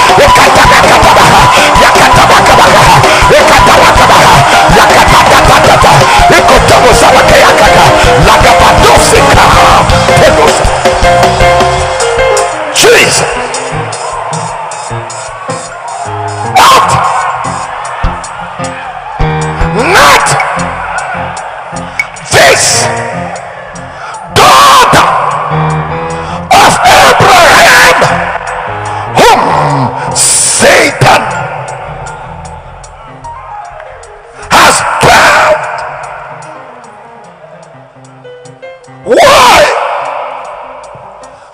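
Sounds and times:
large congregation shouting and screaming: 0.0 - 38.0, 39.0 - 41.5.

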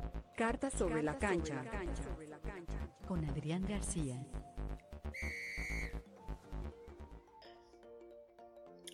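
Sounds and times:
upbeat instrumental podcast intro jingle with percussive hits and whistle-like melody: 0.0 - 8.8
speech: 0.4 - 4.5.

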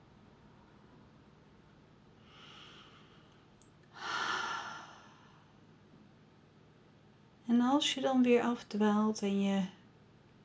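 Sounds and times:
slow deep breath: 2.2 - 5.6
speech: 7.5 - 9.8.

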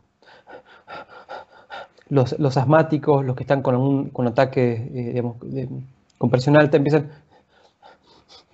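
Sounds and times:
fast shallow panting breaths: 0.2 - 2.1, 7.1 - 8.5
speech: 2.1 - 7.3.

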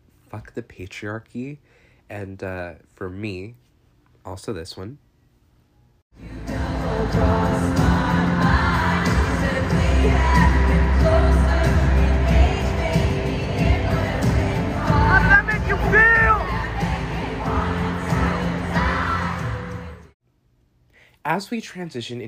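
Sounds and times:
speech: 0.3 - 5.0, 6.2 - 7.8, 21.2 - 22.2
large concert crowd yelling song lyrics together: 6.2 - 20.1.

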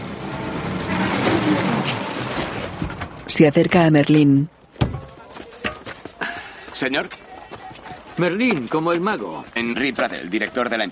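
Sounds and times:
car pulling up and coming to a stop: 0.0 - 3.3
speech: 3.3 - 4.6, 6.8 - 7.2, 8.2 - 10.8.

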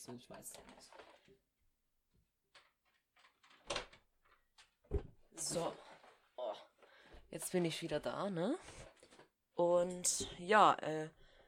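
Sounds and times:
speech: 0.0 - 1.5, 4.9 - 6.7, 7.3 - 8.9, 9.6 - 11.2
room door shut with solid thumps: 4.9 - 5.2.

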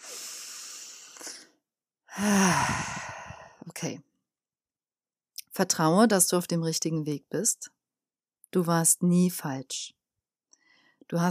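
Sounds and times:
deep airy breath in and out: 0.0 - 3.7
speech: 2.2 - 3.0, 3.8 - 4.1, 5.6 - 7.8, 8.5 - 10.0, 11.1 - 11.2.

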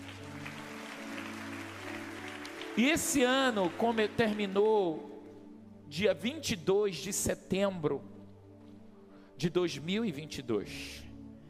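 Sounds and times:
congregation clapping during a church service: 0.0 - 5.1
speech: 2.8 - 5.1, 5.9 - 8.2, 9.4 - 11.1.

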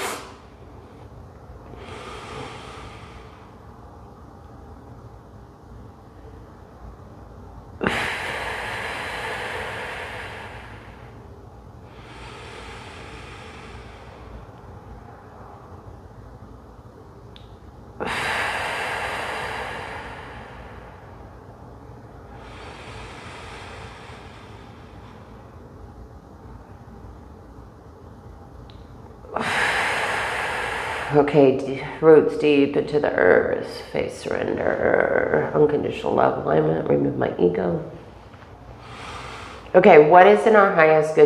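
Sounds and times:
deep inhales and exhales of a 4-7-8 breathing exercise: 0.0 - 4.3, 5.8 - 16.2, 17.9 - 27.2, 29.2 - 32.4, 38.0 - 40.4
speech: 31.2 - 38.0, 39.7 - 41.2.

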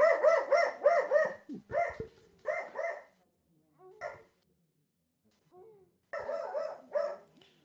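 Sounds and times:
dog barking at someone at the back door: 0.0 - 3.1, 4.0 - 4.3, 6.2 - 7.4.

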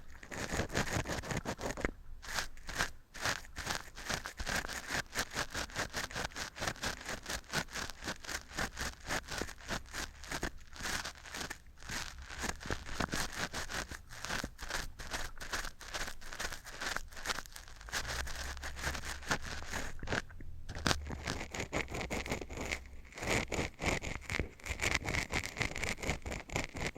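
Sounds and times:
rapid rough scratching: 0.0 - 26.9
low rumble: 20.2 - 21.3.

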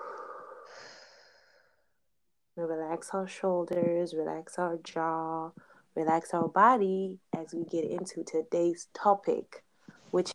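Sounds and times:
person taking a deep breath in, holding and breathing out: 0.0 - 1.8
speech: 2.6 - 10.3.

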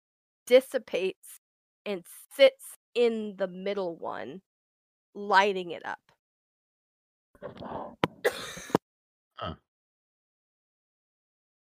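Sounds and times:
speech: 0.5 - 4.5, 5.2 - 6.0, 7.4 - 8.7, 9.4 - 9.6
person coughing and clearing throat: 7.7 - 8.8.

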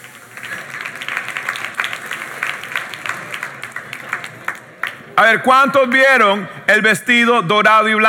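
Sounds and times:
live audience applause: 0.0 - 5.2
speech: 5.2 - 8.0.

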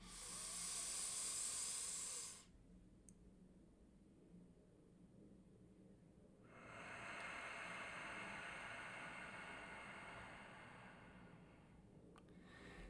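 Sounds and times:
slow nasal breathing in and out as a breathing exercise: 0.0 - 2.5, 6.5 - 12.8.

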